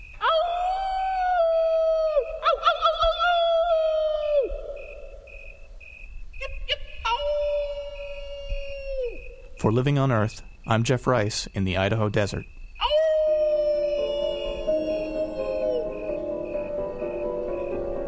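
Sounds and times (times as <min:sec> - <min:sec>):
grasshopper mouse howling call in the Idaho desert: 0:00.0 - 0:05.7, 0:06.4 - 0:09.6, 0:12.7 - 0:18.0
speech: 0:09.6 - 0:12.6.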